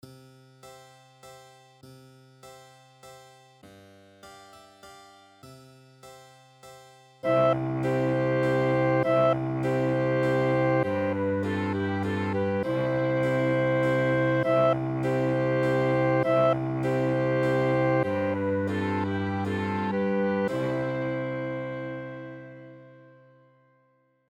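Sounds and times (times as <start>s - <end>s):
cello minuet: 7.2s - 23.4s.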